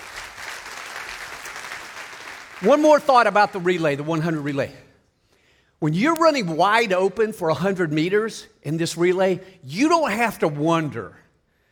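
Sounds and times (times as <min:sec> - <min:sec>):
audience applauding: 0:00.0 - 0:04.5
speech: 0:02.6 - 0:04.8, 0:05.8 - 0:11.2.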